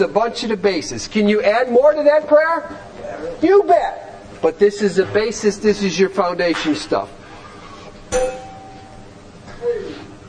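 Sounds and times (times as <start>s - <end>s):
speech: 0.0s - 7.2s
bell ringing with sharp metallic ding: 8.1s - 9.1s.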